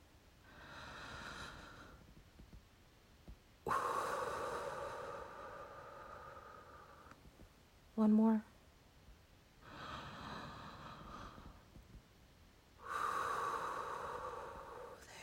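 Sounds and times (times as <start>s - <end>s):
deep breathing, inhaling and exhaling: 0.4s - 2.5s, 3.7s - 7.3s, 9.6s - 11.9s, 12.8s - 15.2s
speech: 8.0s - 8.5s.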